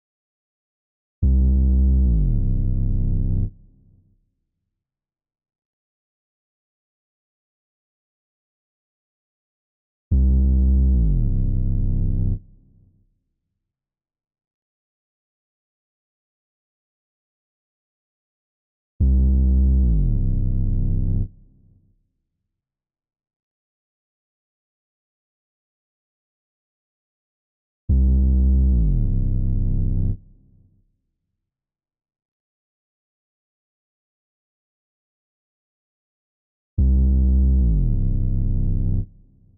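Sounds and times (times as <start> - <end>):
bass melody loop stem in A minor: 1.2 - 3.5, 10.1 - 12.3, 19.1 - 21.2, 28.0 - 30.1, 36.8 - 39.0.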